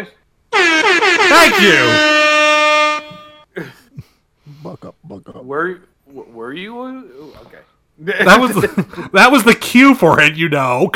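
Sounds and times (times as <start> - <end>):
speech: 0.0 - 2.1, 4.6 - 10.9
air horn blast: 0.5 - 3.5.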